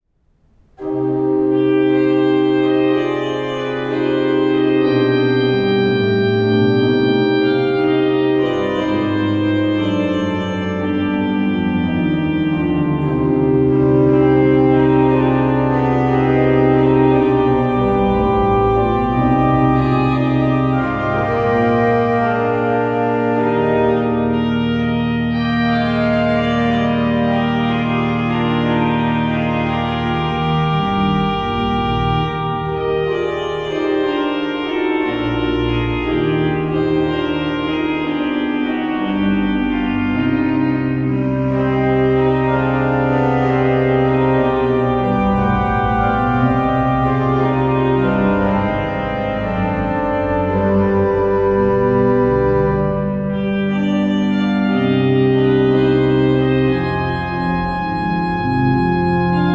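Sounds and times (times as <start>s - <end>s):
organ larghetto from Valais: 0.3s - 59.5s.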